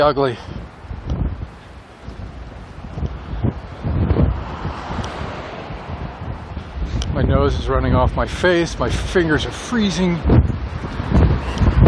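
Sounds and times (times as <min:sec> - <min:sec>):
speech: 0:00.0 - 0:00.6, 0:07.2 - 0:11.6
cold north wind blowing a gale: 0:00.0 - 0:11.8.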